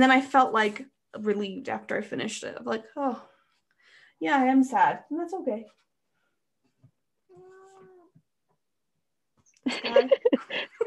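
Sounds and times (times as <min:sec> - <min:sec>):
speech: 0:00.0 - 0:03.3, 0:04.2 - 0:05.8, 0:09.6 - 0:10.8
female cat making short chirpy meows: 0:07.3 - 0:08.2
laughter: 0:09.6 - 0:10.8.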